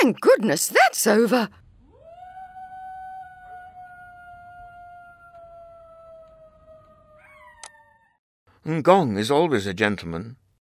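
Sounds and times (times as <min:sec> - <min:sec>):
speech: 0:00.0 - 0:01.6, 0:08.7 - 0:10.4
dingo howling: 0:01.8 - 0:08.2.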